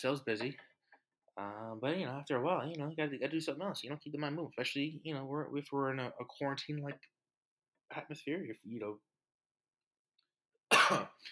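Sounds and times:
speech: 0:00.0 - 0:00.7, 0:01.4 - 0:07.2, 0:07.9 - 0:09.1, 0:10.9 - 0:11.3
person coughing into the elbow: 0:10.7 - 0:11.3.

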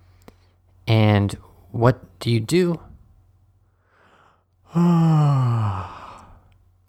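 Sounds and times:
speech: 0:01.0 - 0:02.9, 0:04.7 - 0:06.0
person yawning: 0:04.7 - 0:06.4.

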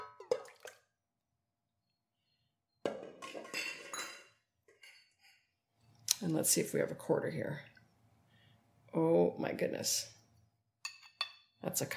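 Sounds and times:
dishware clinking: 0:02.9 - 0:05.4
speech: 0:06.2 - 0:07.7, 0:09.0 - 0:10.2, 0:11.6 - 0:11.9.

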